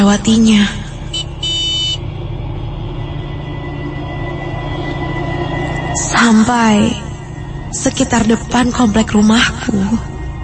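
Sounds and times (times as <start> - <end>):
speech: 0.0 - 0.8, 6.3 - 7.1, 7.7 - 10.1
steady low road and engine rumble: 0.0 - 10.4
vehicle horn honking: 1.1 - 2.0.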